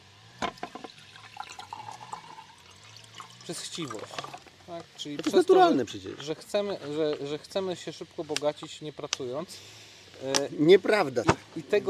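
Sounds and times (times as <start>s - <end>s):
water pouring into a glass: 0.8s - 4.5s
speech: 3.5s - 11.8s.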